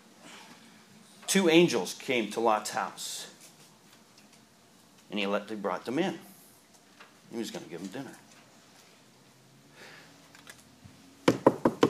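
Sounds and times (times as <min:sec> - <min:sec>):
speech: 0:01.3 - 0:03.3, 0:05.1 - 0:06.3, 0:07.3 - 0:08.2
firm knocking on a wooden door: 0:11.3 - 0:11.8.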